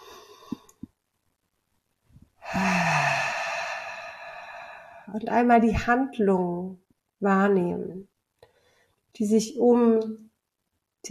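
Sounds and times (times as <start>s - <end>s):
deep breath in and out during a guided breathing exercise: 0.0s - 0.7s, 2.4s - 5.1s
speech: 5.1s - 8.1s, 9.2s - 10.3s.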